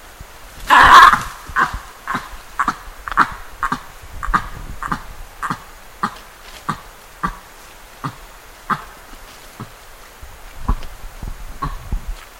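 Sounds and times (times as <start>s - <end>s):
baboon vocalisations: 0.7s - 7.4s.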